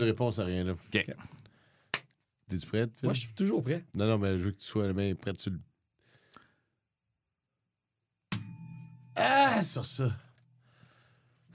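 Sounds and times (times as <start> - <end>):
speech: 0.0 - 1.4, 2.5 - 5.7, 9.2 - 10.3
bright bell ding marking the break between quiz questions: 8.3 - 9.2.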